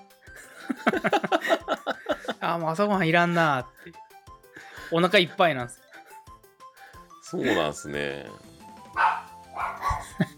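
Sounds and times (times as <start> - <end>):
laughter: 0.4 - 2.5, 9.8 - 10.3
speech: 0.7 - 1.5, 2.4 - 4.0, 4.9 - 5.8, 7.3 - 8.5
dog barking: 8.9 - 10.1.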